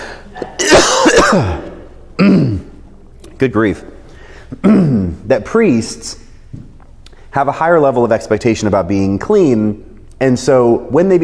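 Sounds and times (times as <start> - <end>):
person coughing harshly: 0.4 - 2.8, 4.5 - 5.2
speech: 1.3 - 1.6, 2.2 - 2.6, 3.4 - 6.7, 7.3 - 11.2.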